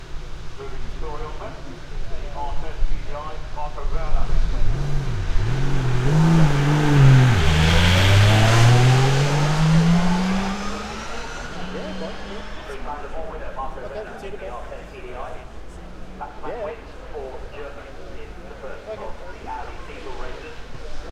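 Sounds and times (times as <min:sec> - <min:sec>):
Audi R10 TDI race car engine: 0:00.0 - 0:13.3.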